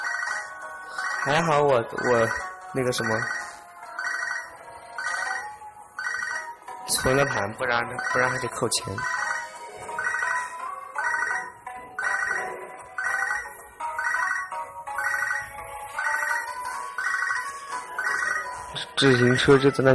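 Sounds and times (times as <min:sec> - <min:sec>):
telephone ringtone beeping in short electronic melodic bursts: 0:00.0 - 0:19.9
speech: 0:01.2 - 0:03.4, 0:07.0 - 0:09.2, 0:19.0 - 0:19.9.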